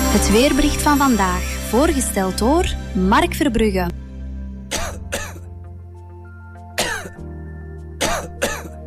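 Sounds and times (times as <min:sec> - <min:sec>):
speech: 0:00.1 - 0:04.0
short dry hacking coughs: 0:04.7 - 0:05.5, 0:06.8 - 0:07.2, 0:08.0 - 0:08.8.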